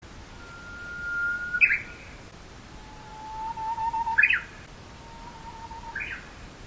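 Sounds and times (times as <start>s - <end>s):
uguisu bush warbler: 0.4s - 6.6s.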